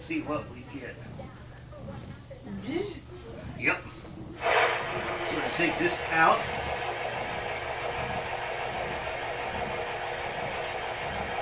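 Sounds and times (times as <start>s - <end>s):
speech: 0.0s - 6.8s
engine-like rumble resembling a V8: 4.2s - 11.4s.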